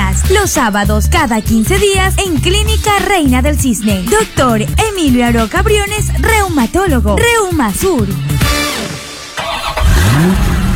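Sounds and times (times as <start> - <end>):
car engine running and revving while accelerating: 0.0 - 10.7
speech: 0.3 - 8.6.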